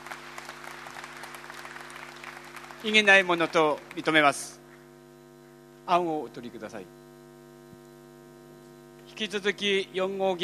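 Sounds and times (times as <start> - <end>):
crowd applauding to approve a draft declaration at a convention meeting: 0.0 - 4.5
speech: 2.8 - 4.6, 5.9 - 7.0, 9.2 - 10.4.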